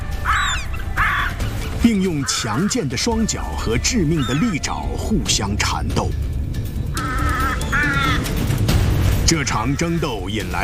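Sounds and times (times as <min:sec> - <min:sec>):
crows calling near white-tailed eagles fighting over prey: 0:00.0 - 0:05.0, 0:06.8 - 0:08.6
speech: 0:01.8 - 0:06.3, 0:09.3 - 0:10.6.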